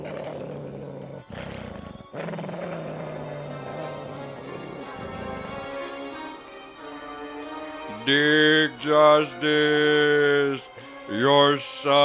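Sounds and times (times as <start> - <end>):
wolf snarling and growling in an attack: 0.0 - 6.4
speech: 8.1 - 12.0.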